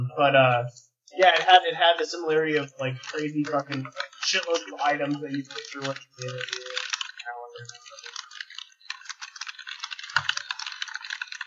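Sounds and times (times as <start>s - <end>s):
speech: 0.2s - 6.8s, 7.6s - 8.0s
typing on a computer keyboard: 3.0s - 11.4s.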